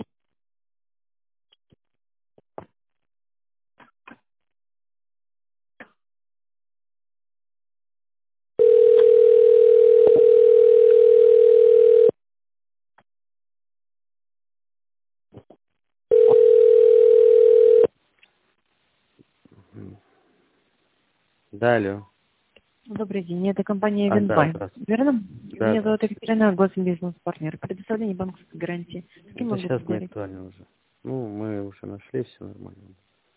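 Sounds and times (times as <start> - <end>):
telephone line beeps while waiting for an operator: 8.6 - 12.1, 16.1 - 17.9
speech: 21.6 - 22.1, 23.0 - 33.0.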